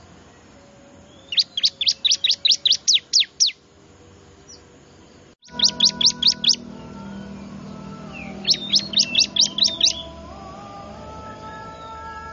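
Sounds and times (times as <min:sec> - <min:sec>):
faint steady hum: 0:00.0 - 0:12.3
bar-winged prinia high descending chirps: 0:00.3 - 0:03.6, 0:04.4 - 0:10.3.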